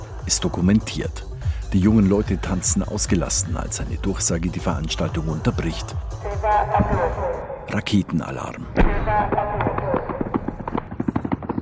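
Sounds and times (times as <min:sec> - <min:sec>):
speech: 0:00.3 - 0:09.8
commotion and voices of fleeing crowds: 0:04.9 - 0:10.7
automatic fire from Kalashnikov rifles at festival grounds: 0:08.8 - 0:11.5.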